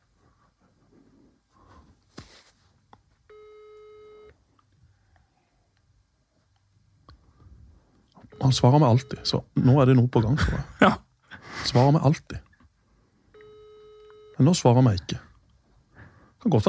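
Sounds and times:
outgoing phone call ringing tone beep: 3.3 - 4.4, 8.3 - 9.4, 13.3 - 14.6
speech: 8.4 - 11.0, 11.7 - 12.4, 14.4 - 15.2, 16.4 - 16.6.

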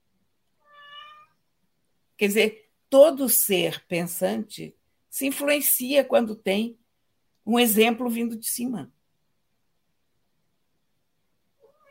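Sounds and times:
cat meowing: 0.6 - 1.4, 11.6 - 11.8
speech: 2.2 - 6.8, 7.4 - 9.0.

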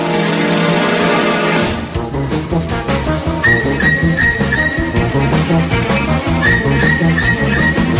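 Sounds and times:
loud full instrumental backing music: 0.0 - 7.9
whistled theme tune melody: 3.3 - 7.9.

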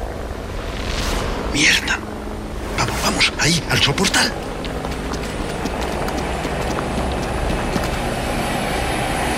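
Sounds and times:
helicopter rotor drone flying low overhead: 0.0 - 0.8, 1.4 - 9.3
speech: 1.5 - 2.0, 3.5 - 4.5
quick footsteps: 3.9 - 8.9.

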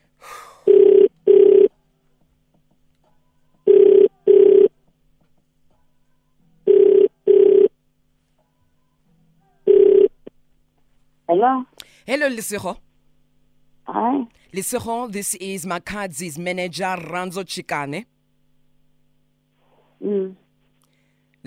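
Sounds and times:
telephone ringback tone during outgoing call: 0.7 - 1.7, 3.7 - 4.7, 6.7 - 7.7, 9.7 - 10.2
speech: 11.4 - 12.9, 14.0 - 18.1, 20.0 - 20.4.

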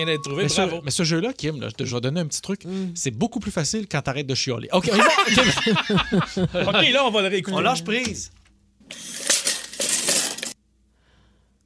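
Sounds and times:
speech: 0.0 - 9.0
laughter: 4.8 - 8.0
metal retractable tape measure snapping back into its case: 8.9 - 10.6.

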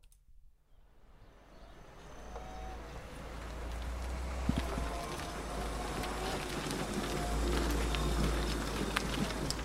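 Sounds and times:
electric scooter rolling along at about 10 km/h: 0.9 - 9.6
wind buffeting the microphone: 2.9 - 9.6.

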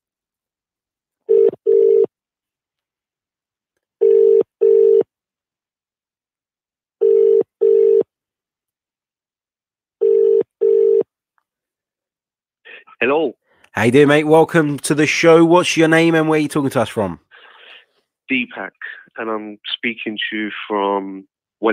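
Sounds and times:
telephone ringing tone: 1.3 - 2.1, 4.0 - 5.1, 7.0 - 8.1, 10.0 - 11.0
speech: 13.0 - 17.3, 18.3 - 21.7.

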